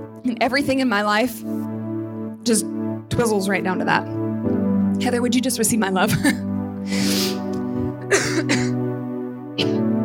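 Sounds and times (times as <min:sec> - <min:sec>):
speech: 0:00.2 - 0:01.6, 0:02.4 - 0:07.2
person coughing raspily: 0:06.1 - 0:08.8, 0:09.6 - 0:09.9
throat clearing: 0:07.8 - 0:08.8, 0:09.6 - 0:09.9.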